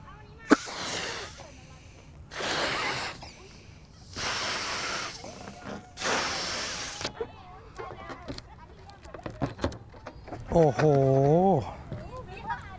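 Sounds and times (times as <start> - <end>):
person blowing breath hard into a container: 0.5 - 1.4, 2.3 - 3.3, 4.1 - 7.1
speech: 10.6 - 11.8.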